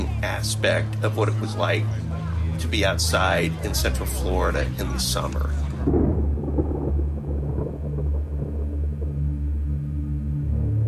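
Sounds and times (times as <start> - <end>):
speech: 0.2 - 6.1
rolling thunder from a thunderstorm: 5.8 - 10.0.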